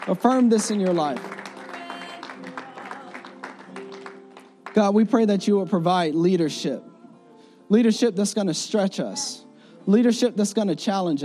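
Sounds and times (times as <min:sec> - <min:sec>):
speech: 0:00.0 - 0:01.4, 0:04.8 - 0:06.9, 0:07.7 - 0:11.2
church audience clapping in praise: 0:00.0 - 0:05.0.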